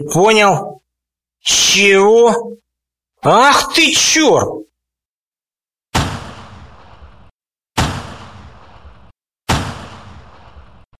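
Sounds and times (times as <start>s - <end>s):
speech: 0.0s - 0.8s, 1.4s - 2.6s, 3.2s - 4.7s
single rifle shots: 6.0s - 10.9s.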